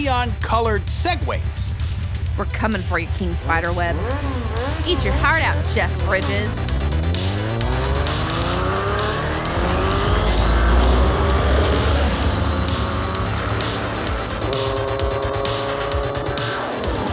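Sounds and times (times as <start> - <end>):
speech: 0.0 - 6.7
engines revving and roaring away, echoing off buildings: 0.0 - 17.1
tire squeals: 6.6 - 17.1.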